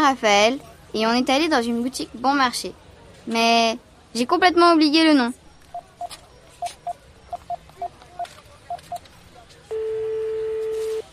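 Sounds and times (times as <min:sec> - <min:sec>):
speech: 0:00.0 - 0:05.4
phone keypad beeps while dialling a number: 0:05.7 - 0:09.0
telephone line tone: 0:09.7 - 0:11.1.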